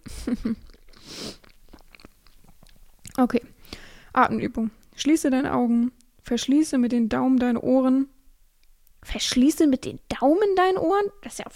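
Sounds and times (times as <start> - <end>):
mouth sounds: 0.0 - 2.0
person chewing a piece of banana: 0.0 - 3.2
speech: 0.2 - 1.4, 3.2 - 3.5, 4.2 - 8.1, 9.0 - 11.5.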